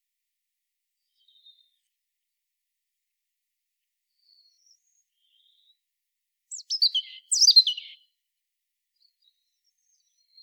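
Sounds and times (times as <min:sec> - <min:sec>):
European robin Erithacus rubecula singing descending warbled notes: 0:06.5 - 0:08.0.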